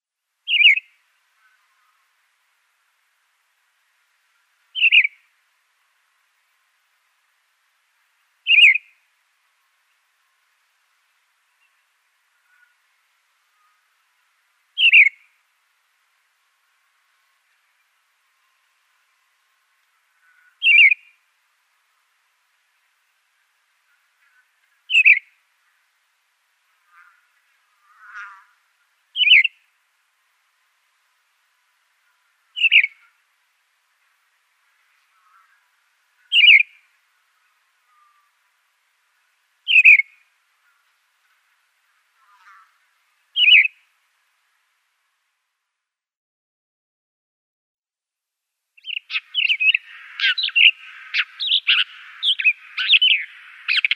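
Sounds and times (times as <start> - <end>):
Blackstart singing: 0.4 - 1.6, 4.7 - 5.3, 8.4 - 9.0, 14.8 - 15.3, 20.2 - 21.2, 24.9 - 25.4, 29.1 - 29.7, 32.5 - 33.1, 36.2 - 36.9, 39.7 - 40.2, 43.4 - 43.8, 48.8 - 53.9.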